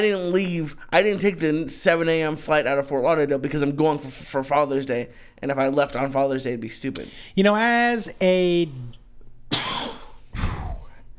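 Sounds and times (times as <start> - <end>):
speech: 0.0 - 9.8
harsh breathy coughs: 9.5 - 11.0.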